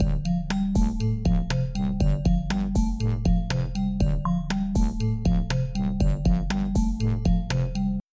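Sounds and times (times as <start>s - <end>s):
synth beat: 0.0s - 8.0s
bass: 0.0s - 8.1s.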